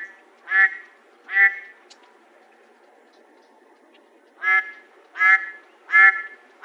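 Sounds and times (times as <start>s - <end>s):
mallard quacking: 0.5s - 1.7s, 4.4s - 6.6s.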